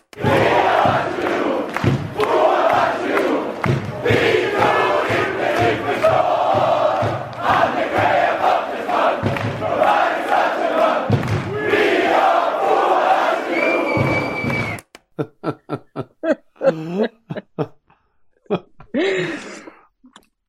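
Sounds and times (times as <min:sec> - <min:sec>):
crowd of football supporters chanting a player song in a stadium: 0:00.1 - 0:14.5
laughter: 0:15.1 - 0:17.8.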